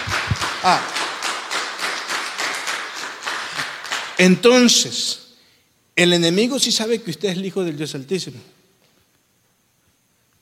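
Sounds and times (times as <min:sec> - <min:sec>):
audience clapping in a steady rhythmic beat: 0:00.0 - 0:04.7
speech: 0:00.6 - 0:01.0, 0:04.2 - 0:05.2, 0:06.0 - 0:08.6.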